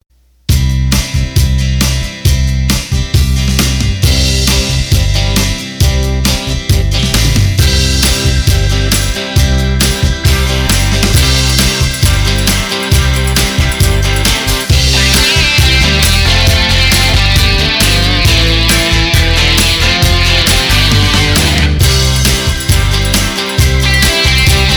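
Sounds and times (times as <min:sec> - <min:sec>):
Roland BK7m accordion playing country rock: 0:00.6 - 0:24.7.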